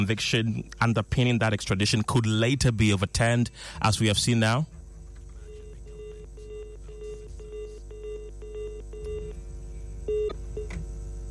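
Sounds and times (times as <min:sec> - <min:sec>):
speech: 0:00.0 - 0:04.8
low steady hum on a phone line: 0:04.7 - 0:11.2
short telephone dialing tones: 0:05.4 - 0:09.4, 0:10.1 - 0:10.8.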